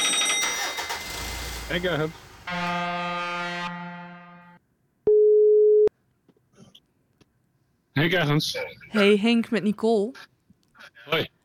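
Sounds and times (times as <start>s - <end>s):
speech: 1.7s - 3.2s, 8.0s - 10.3s, 11.1s - 11.4s
telephone ringing tone for a call being placed: 5.1s - 5.9s.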